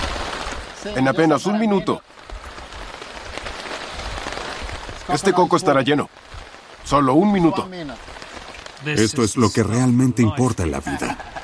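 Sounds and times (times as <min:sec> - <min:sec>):
steady rain pattering on a taut tarp: 0:00.0 - 0:11.4
speech: 0:00.8 - 0:02.4, 0:05.1 - 0:08.2, 0:08.8 - 0:11.3
laughter: 0:10.6 - 0:11.4.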